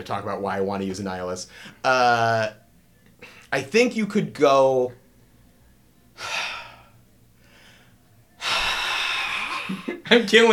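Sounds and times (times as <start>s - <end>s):
speech: 0.0s - 2.6s, 3.2s - 5.0s, 9.7s - 10.5s
heavy labored breathing in a hot room: 6.2s - 9.8s.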